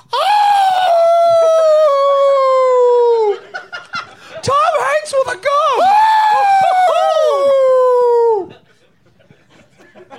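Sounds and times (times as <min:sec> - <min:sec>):
person imitating a howl: 0:00.1 - 0:03.3, 0:05.8 - 0:08.5
laughter: 0:03.0 - 0:05.0, 0:08.2 - 0:10.1.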